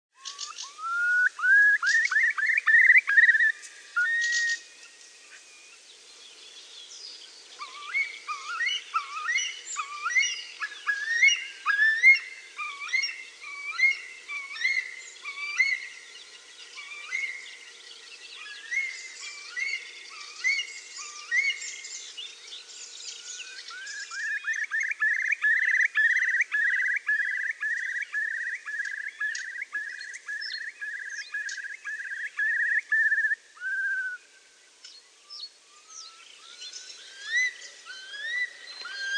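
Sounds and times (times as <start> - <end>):
Eurasian curlew calling: 0.2 - 5.8, 7.5 - 39.1.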